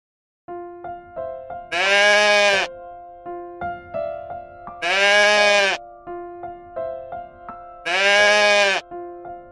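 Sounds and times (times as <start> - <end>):
goat bleating: 1.7 - 2.7, 4.8 - 5.8, 7.8 - 8.8.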